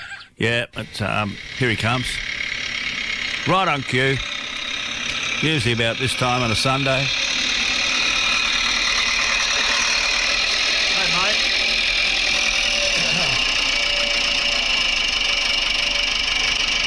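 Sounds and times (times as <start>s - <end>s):
speech: 0.4s - 2.3s, 3.5s - 4.3s, 5.4s - 7.3s
tractor engine idling on a sunny Sunday: 0.8s - 16.8s.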